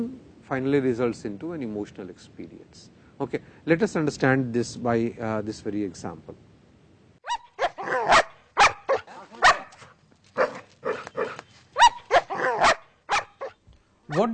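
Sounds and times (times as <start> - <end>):
speech: 0.0 - 6.4, 14.2 - 14.3
dog barking with sharp yelping barks: 7.2 - 9.8, 10.4 - 14.3.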